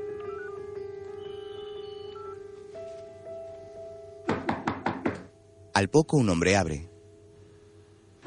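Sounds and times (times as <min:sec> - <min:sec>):
mobile phone call ringing inside a hotel room: 0:00.2 - 0:02.6
man knocking on a hotel room door: 0:04.3 - 0:05.3
speech: 0:05.8 - 0:06.9.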